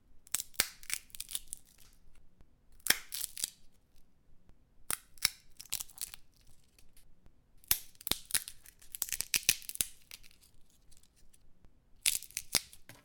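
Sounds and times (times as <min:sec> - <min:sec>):
peanuts cracking: 0:00.2 - 0:02.0, 0:02.8 - 0:03.7, 0:04.8 - 0:07.0, 0:07.6 - 0:11.4, 0:12.0 - 0:13.0.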